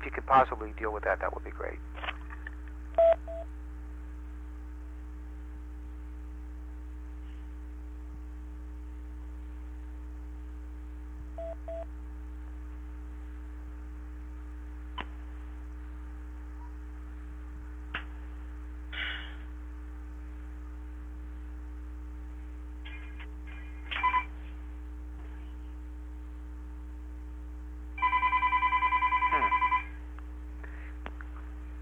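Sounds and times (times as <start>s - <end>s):
steady low electrical hum: 0.0s - 31.8s
speech: 0.1s - 2.2s
telephone with electronic ringing tones: 24.0s - 24.3s, 28.0s - 30.0s.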